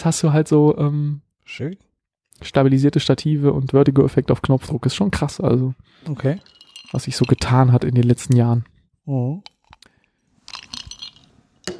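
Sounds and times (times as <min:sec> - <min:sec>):
speech: 0:00.0 - 0:09.5
ice cubes clinking against a glass: 0:06.4 - 0:07.7, 0:10.5 - 0:11.3.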